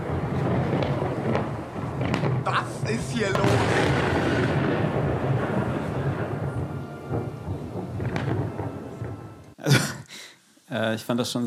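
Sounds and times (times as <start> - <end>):
deep rolling thunder with sharp cracks: 0.0 - 9.6
heavy rain pouring in a thunderstorm: 0.0 - 9.6
speech: 2.9 - 3.7, 10.8 - 11.4.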